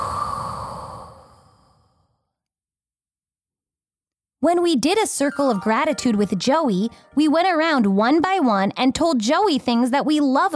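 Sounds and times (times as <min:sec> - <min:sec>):
slow breath out during a guided breathing exercise: 0:00.0 - 0:02.1
speech: 0:04.4 - 0:10.5.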